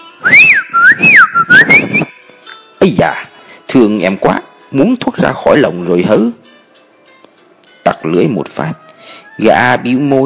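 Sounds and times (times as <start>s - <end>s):
man whistling a lilting tune: 0.2s - 2.2s
speech: 2.8s - 6.4s, 7.9s - 10.2s.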